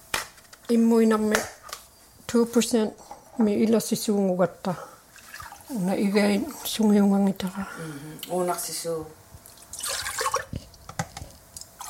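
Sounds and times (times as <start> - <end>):
speech: 0.7 - 1.6, 2.3 - 4.9, 5.7 - 9.2
milk pouring into a pot: 5.1 - 5.7, 9.4 - 10.8
milk drips and small splashes: 5.1 - 6.0, 9.4 - 10.7.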